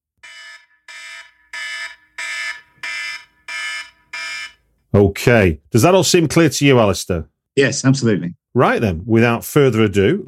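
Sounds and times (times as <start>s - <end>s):
buzzing alarm beeps marking the end of a time limit: 0.2s - 4.6s
speech: 4.9s - 10.2s.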